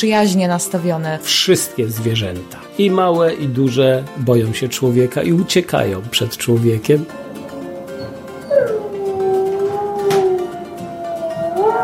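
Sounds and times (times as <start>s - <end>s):
speech: 0.0s - 7.3s
wolf howling in the Lubusz forests: 7.2s - 11.8s.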